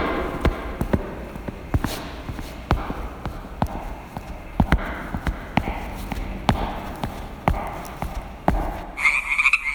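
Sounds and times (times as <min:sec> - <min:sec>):
busy outdoor noise: 0:00.0 - 0:09.7
frogs croaking: 0:09.0 - 0:09.7.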